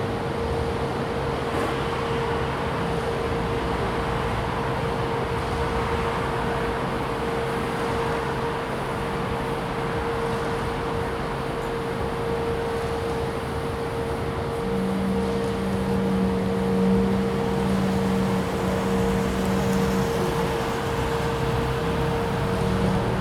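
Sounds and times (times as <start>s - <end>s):
low rumble of machinery and traffic: 0.0s - 23.1s
concrete vibrator whining at a construction site: 9.4s - 23.1s.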